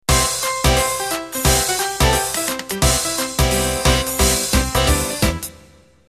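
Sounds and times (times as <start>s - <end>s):
flapper music intro: 0.1s - 5.8s.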